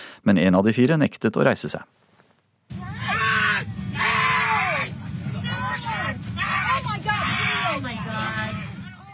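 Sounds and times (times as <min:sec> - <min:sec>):
speech: 0:00.2 - 0:02.1
steady low airplane engine drone: 0:02.7 - 0:06.5
airplane passengers shouting in protest: 0:02.8 - 0:09.1.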